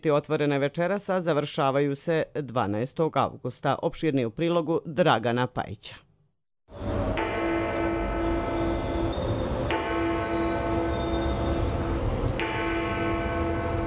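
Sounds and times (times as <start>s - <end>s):
speech: 0.0s - 6.1s
large clock tower bell ringing: 6.9s - 13.8s.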